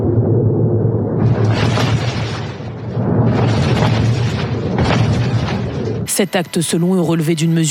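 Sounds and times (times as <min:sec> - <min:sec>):
heavy explosions from US strikes on a control station in Bandar Abbas, Iran: 0:00.0 - 0:06.1
speech: 0:06.2 - 0:07.7.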